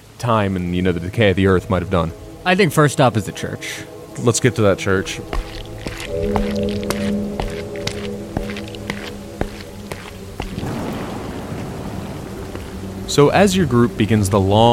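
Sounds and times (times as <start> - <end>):
speech: 0.2 - 7.0, 13.2 - 14.7
low droning hum: 3.9 - 14.7
sharp drips: 4.8 - 14.1
rain pattering onto a steep muddy dirt path: 5.1 - 14.7.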